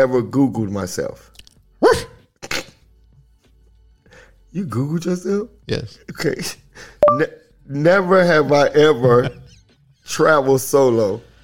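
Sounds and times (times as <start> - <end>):
speech: 0.0 - 2.0, 4.5 - 9.4, 10.1 - 11.3
person imitating a dog barking during a party drinking game: 1.8 - 2.8.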